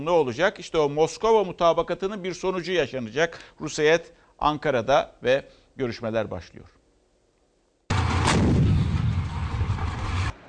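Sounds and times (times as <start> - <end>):
speech: 0.0 - 6.8
mortar fire in Idlib aimed at a Turkish Armed Forces convoy: 7.9 - 10.4.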